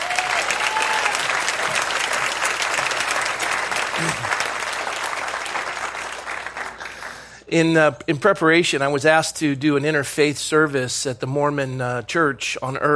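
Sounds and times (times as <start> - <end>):
audience applauding a church's staff: 0.0 - 7.4
speech: 7.5 - 12.9.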